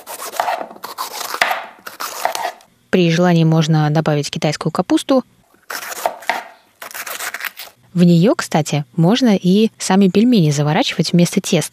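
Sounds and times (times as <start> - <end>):
knife chopping ginger and carrot on a cutting board: 0.0 - 2.6, 5.7 - 7.4
speech: 2.9 - 5.4, 7.9 - 11.7.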